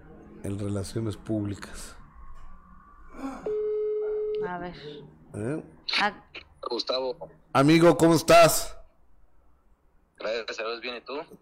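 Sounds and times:
speech: 0:00.4 - 0:02.0, 0:04.4 - 0:08.8, 0:10.2 - 0:11.3
telephone ringback tone while placing a call: 0:03.5 - 0:04.6.

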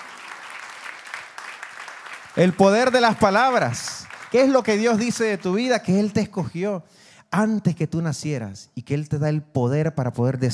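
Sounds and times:
audience clapping loudly: 0:00.0 - 0:06.0
speech: 0:02.4 - 0:10.5.

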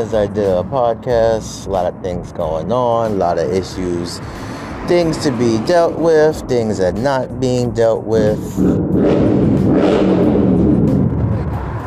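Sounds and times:
speech: 0:00.0 - 0:10.2
motorcycle engines revving outdoors in New York City: 0:03.7 - 0:11.8.

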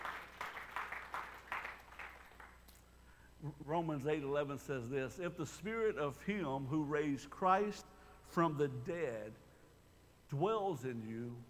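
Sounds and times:
group clapping in a steady rhythmic beat in praise: 0:00.0 - 0:02.7
speech: 0:03.4 - 0:09.4, 0:10.3 - 0:11.4.

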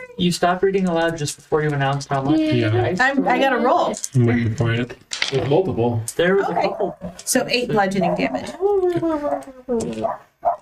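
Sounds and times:
speech: 0:00.2 - 0:10.6
dog barking: 0:10.0 - 0:10.6.

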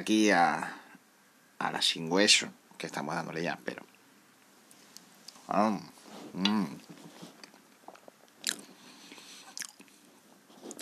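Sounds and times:
speech: 0:00.0 - 0:00.8, 0:01.6 - 0:03.9, 0:05.5 - 0:06.9
potato chips being bitten and chewed: 0:07.4 - 0:08.7.

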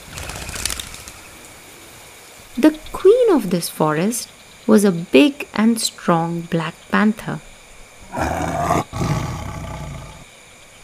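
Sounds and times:
bird wings flapping: 0:00.0 - 0:01.5
faint bird sounds: 0:00.0 - 0:10.8
speech: 0:03.4 - 0:07.5, 0:08.1 - 0:08.9.

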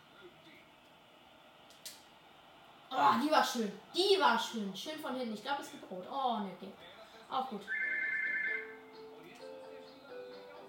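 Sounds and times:
speech: 0:02.9 - 0:07.8
telephone ringing with an electronic ringtone: 0:07.7 - 0:08.8.

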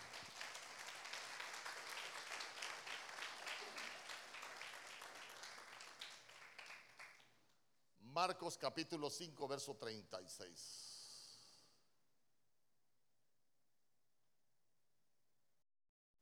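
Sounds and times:
audience clapping hands: 0:00.0 - 0:07.5
speech: 0:08.2 - 0:10.9.

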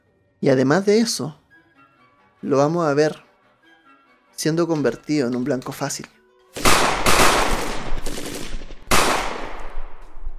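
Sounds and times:
speech: 0:00.4 - 0:01.4, 0:02.4 - 0:03.3, 0:04.4 - 0:06.7
rapid gunfire: 0:06.6 - 0:09.8.

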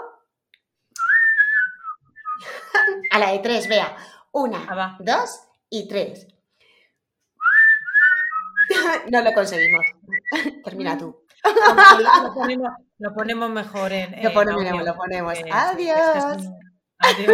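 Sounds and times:
person whistling: 0:01.0 - 0:03.9, 0:07.4 - 0:10.4
laughter: 0:02.4 - 0:03.1, 0:11.5 - 0:12.8, 0:17.0 - 0:17.3
speech: 0:03.2 - 0:06.3, 0:08.9 - 0:17.3.

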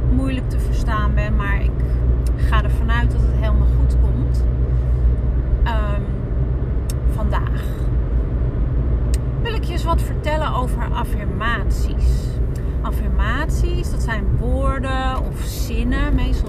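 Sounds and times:
car engine drone inside moving car: 0:00.0 - 0:16.4
road rumble inside moving car: 0:00.0 - 0:16.4
speech: 0:09.8 - 0:16.4.

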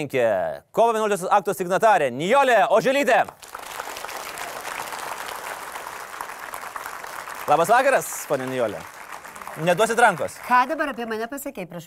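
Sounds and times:
speech: 0:00.0 - 0:03.6, 0:07.5 - 0:09.0, 0:09.6 - 0:11.8
audience applause welcoming a guest to an evening show: 0:03.3 - 0:11.2.

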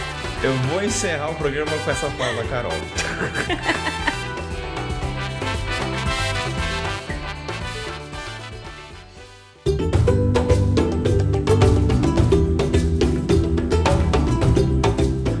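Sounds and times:
speech: 0:00.4 - 0:03.9
African atabaque hand drums playing a dense driving rhythm: 0:01.4 - 0:07.6, 0:09.7 - 0:15.3
laughter: 0:01.9 - 0:04.5.

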